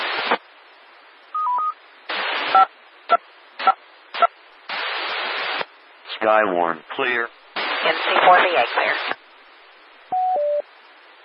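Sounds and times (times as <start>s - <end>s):
radio static bursts: 0.0s - 0.4s, 2.1s - 9.2s
two-tone DTMF beeps of amateur radio repeater control tones: 1.4s - 1.8s, 10.1s - 10.6s
speech: 6.2s - 9.1s.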